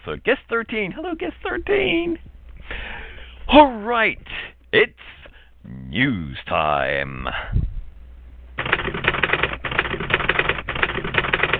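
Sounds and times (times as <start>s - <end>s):
speech: 0.1s - 2.3s, 3.5s - 7.6s
rapid typewriter clatter: 8.6s - 11.5s.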